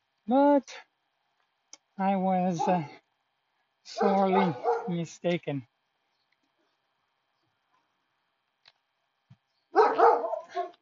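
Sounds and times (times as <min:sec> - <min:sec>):
speech: 0:00.3 - 0:00.9, 0:02.0 - 0:03.0, 0:03.9 - 0:05.7
dog barking roughly with a trailing yap: 0:02.6 - 0:02.9, 0:03.9 - 0:05.0, 0:09.7 - 0:10.7.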